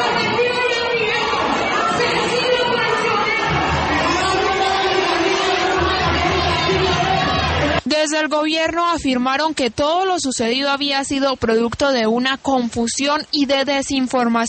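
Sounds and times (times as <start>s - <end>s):
dense agitated crowd shouting and yelling insults at a meeting: 0.0s - 7.8s
speech: 8.2s - 14.4s.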